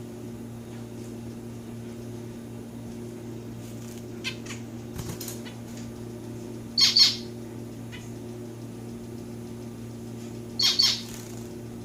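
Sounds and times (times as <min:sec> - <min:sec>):
low background hum: 0:00.0 - 0:11.8
pet domestic society finch calls, Lonchura striata domestica: 0:06.8 - 0:07.3, 0:10.6 - 0:11.2.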